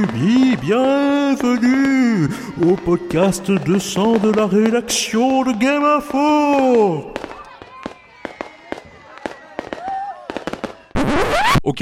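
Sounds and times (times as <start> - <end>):
speech: 0.0 - 7.3, 11.7 - 11.8
faint crowd voices: 0.0 - 11.0
fireworks and firecrackers popping and crackling: 0.0 - 11.6
whistling firework rocket: 7.0 - 11.6.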